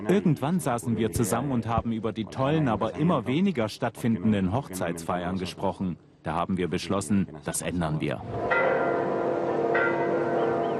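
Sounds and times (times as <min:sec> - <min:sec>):
speech: 0:00.0 - 0:08.9
large cathedral church bells ringing in overlapping peals: 0:08.4 - 0:10.7.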